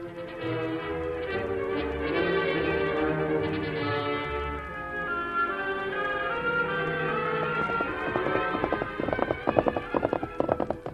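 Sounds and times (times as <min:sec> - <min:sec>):
orchestral music: 0:00.0 - 0:10.3
horse galloping hoofbeats: 0:06.9 - 0:10.9.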